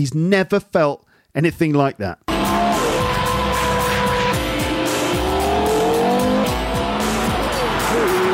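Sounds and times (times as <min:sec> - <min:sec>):
speech: 0:00.0 - 0:02.3
5.7-litre V10 sports car engine roaring on a track: 0:02.3 - 0:08.3
tires squealing as car is driven hard around a track: 0:02.3 - 0:08.3.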